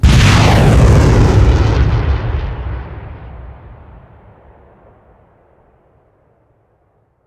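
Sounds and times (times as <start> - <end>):
rocket: 0.0 - 5.7.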